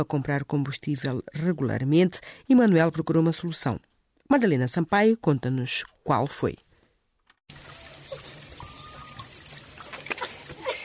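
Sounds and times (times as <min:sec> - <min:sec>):
speech: 0:00.0 - 0:06.6
water trickling over stones in a small village stream: 0:07.5 - 0:10.8.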